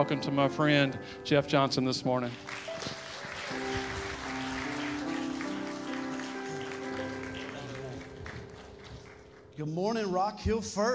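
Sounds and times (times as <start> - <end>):
speech: 0.0 - 3.0, 9.6 - 10.9
audience applauding a guest speaker: 2.3 - 9.6.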